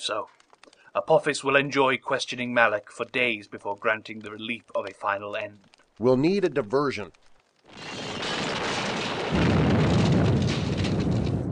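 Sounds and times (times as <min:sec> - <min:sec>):
speech: 0:00.0 - 0:00.4, 0:01.0 - 0:08.0
explosions from an orbital bombardment by an attacking fleet: 0:07.7 - 0:11.5.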